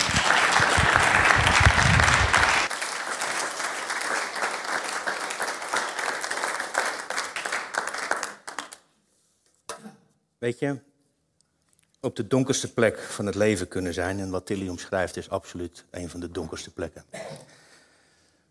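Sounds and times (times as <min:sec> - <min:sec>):
sizable audience applauding: 0:00.0 - 0:08.8
speech: 0:10.4 - 0:10.9, 0:12.0 - 0:17.5.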